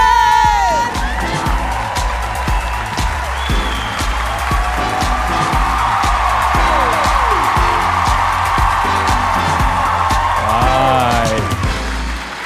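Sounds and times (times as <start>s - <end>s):
large audience at a comedy show applauding to welcome a comedian: 0.0s - 12.4s
thumping music beat: 0.0s - 12.4s.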